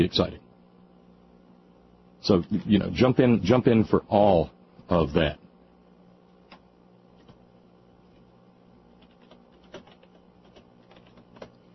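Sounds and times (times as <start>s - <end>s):
speech: 0.0s - 0.4s, 2.2s - 5.4s
low steady hum: 0.0s - 11.7s
typing on a computer keyboard: 9.0s - 11.6s.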